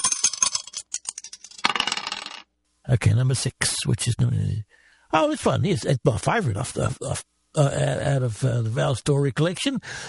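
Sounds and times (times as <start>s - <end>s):
dice tumbling and rattling after a toss: 0.0s - 2.5s
speech: 2.9s - 10.0s.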